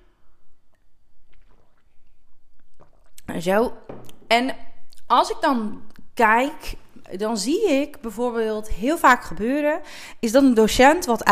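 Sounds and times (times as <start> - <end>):
soft swallows: 0.8 - 3.2
wet slurping sips of hot tea: 1.2 - 3.3
speech: 3.4 - 11.2.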